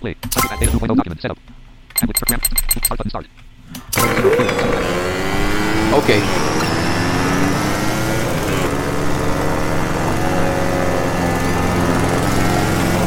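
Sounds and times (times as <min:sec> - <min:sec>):
speech: 0:00.0 - 0:03.4, 0:06.0 - 0:06.5
lawn mower engine: 0:04.1 - 0:13.0.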